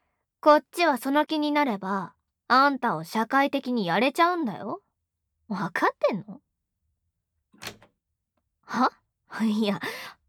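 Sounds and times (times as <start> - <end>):
speech: 0.4 - 4.8, 5.5 - 6.4, 8.7 - 10.2
door being locked: 7.6 - 7.9.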